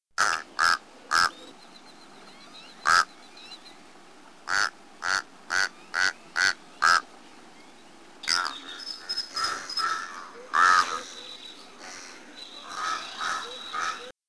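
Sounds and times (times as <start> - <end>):
Tamaulipas crow songs: 0.2 - 1.6, 2.4 - 3.6, 4.5 - 7.1, 8.2 - 14.1.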